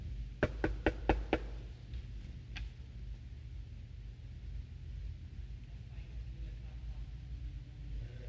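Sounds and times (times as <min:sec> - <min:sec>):
steady low rumble of noise: 0:00.0 - 0:08.2
knocking on a door: 0:00.4 - 0:01.5.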